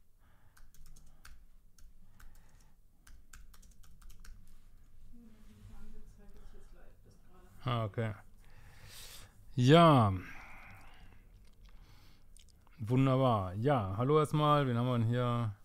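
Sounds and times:
steady low background: 0.0s - 15.6s
typing a chat message on a computer keyboard: 0.5s - 4.4s
speech: 7.8s - 8.3s, 9.6s - 10.4s, 12.8s - 15.6s.

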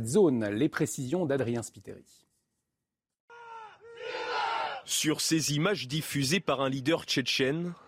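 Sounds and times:
speech: 0.0s - 2.3s, 4.1s - 7.8s
soldiers cheering and shouting in celebration: 3.3s - 4.9s.

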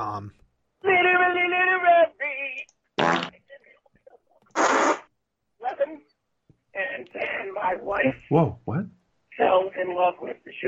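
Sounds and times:
speech: 0.0s - 2.7s, 7.0s - 10.6s
loud fart noises: 3.0s - 3.4s, 4.4s - 5.1s.

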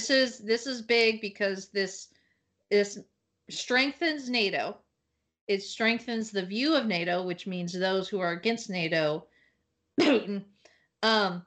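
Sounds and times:
speech: 0.1s - 2.1s, 2.7s - 4.8s, 5.5s - 9.3s, 10.0s - 11.4s
harsh cough: 10.0s - 10.4s.

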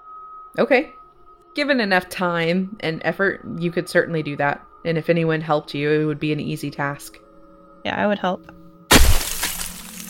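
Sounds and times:
speech: 0.6s - 7.2s, 7.8s - 8.6s
ice sculpture toppling with a heavy crash: 8.9s - 10.0s.

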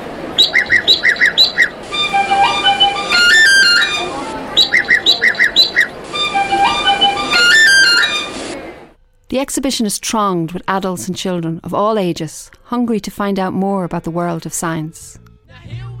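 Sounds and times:
Irish blackbird singing fluty song: 0.4s - 8.3s
person whistling a jig melody: 0.4s - 8.4s
speech: 9.6s - 15.2s.

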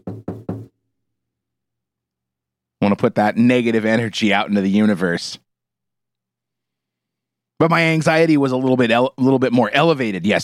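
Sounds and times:
knocking on wood: 0.0s - 0.7s
speech: 2.8s - 5.4s, 7.6s - 10.4s.

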